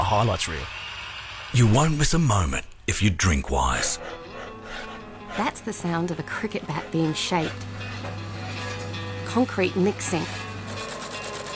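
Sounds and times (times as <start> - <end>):
speech: 0.1 - 0.9, 1.5 - 7.9, 9.3 - 10.5
machine stitching socks at an Australian factory: 7.1 - 11.5.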